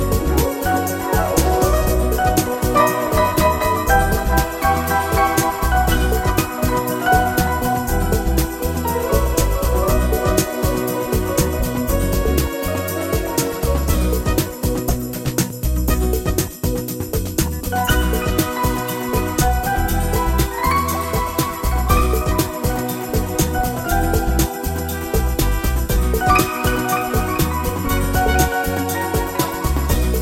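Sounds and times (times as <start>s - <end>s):
Latin smooth jazz: 0.0s - 30.2s.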